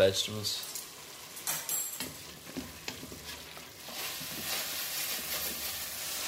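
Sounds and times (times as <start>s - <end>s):
speech: 0.0s - 0.7s
chicken for a soup sizzling in a pot: 0.0s - 6.2s
utensil scraping a pot while stirring: 2.8s - 6.2s.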